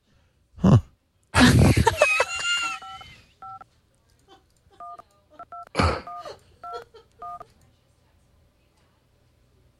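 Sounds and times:
laughter: 0:01.4 - 0:03.3, 0:05.8 - 0:07.2
two-tone phone dialing beeps from an Android phone emulator: 0:02.8 - 0:03.6, 0:04.8 - 0:07.4.

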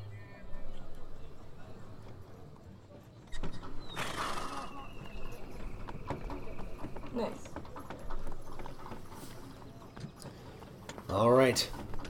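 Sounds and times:
hoofbeats of horses pulling a wagon on a hard surface: 0:03.4 - 0:12.0
speech: 0:11.5 - 0:11.8.

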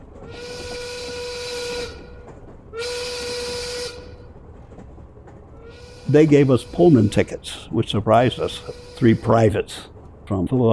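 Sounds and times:
steam train whistle blasts: 0:00.2 - 0:04.4, 0:05.6 - 0:09.8
speech: 0:06.1 - 0:10.7.

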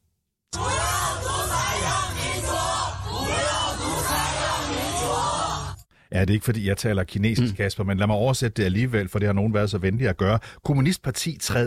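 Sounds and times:
large protest crowd chanting slogans: 0:00.5 - 0:05.8
speech: 0:06.1 - 0:11.6.

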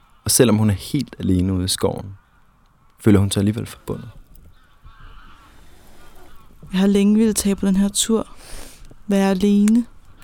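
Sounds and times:
speech: 0:00.3 - 0:02.2, 0:03.0 - 0:04.2, 0:06.7 - 0:10.0
geese honking by a lake in a forest: 0:02.0 - 0:08.8.

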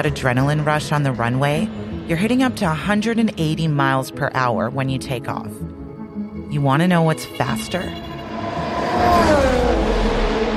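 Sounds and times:
speech: 0:00.0 - 0:05.7, 0:06.5 - 0:08.1
Formula One race car speeding past: 0:08.0 - 0:10.5.

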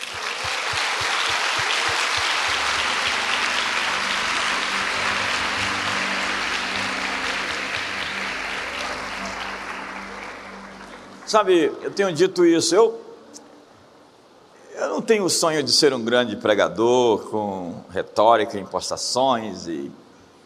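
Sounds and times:
large audience applause: 0:00.0 - 0:11.9
speech: 0:11.3 - 0:13.0, 0:15.1 - 0:20.0.

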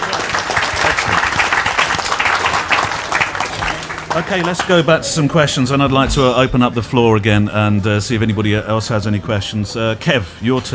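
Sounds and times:
audience applauding: 0:00.0 - 0:05.3
speech: 0:04.2 - 0:10.7.

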